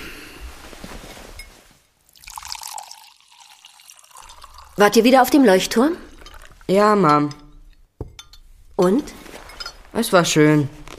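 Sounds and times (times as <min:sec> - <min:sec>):
water pouring into a glass: 0:02.1 - 0:06.9
speech: 0:04.8 - 0:06.1, 0:06.7 - 0:07.4, 0:08.8 - 0:09.2, 0:10.0 - 0:10.8.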